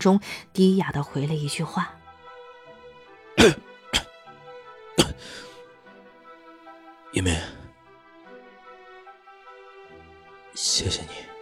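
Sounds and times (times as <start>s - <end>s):
speech: 0.0s - 2.0s, 3.4s - 4.0s, 7.1s - 7.6s, 10.6s - 11.3s
steady musical backing: 0.0s - 11.4s
man with a badly sore throat coughing hoarsely: 3.4s - 4.2s, 5.0s - 5.4s.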